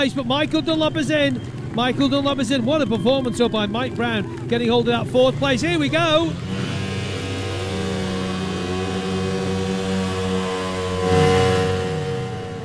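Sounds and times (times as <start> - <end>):
speech: 0.0 - 6.6
Ducati racing motorcycle engine revving during a burnout in the winner's enclosure: 4.3 - 12.6.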